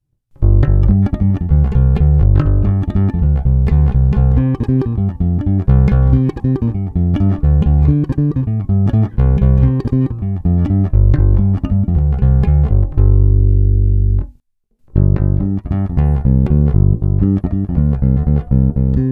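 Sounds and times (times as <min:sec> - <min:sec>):
bass guitar playing: 0:00.4 - 0:19.1.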